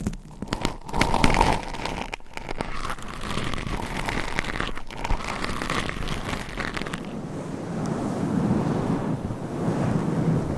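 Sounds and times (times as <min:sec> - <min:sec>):
ASMR microphone scratching: 0:00.0 - 0:09.1
dull low rumbling rub on microphone: 0:03.3 - 0:10.5.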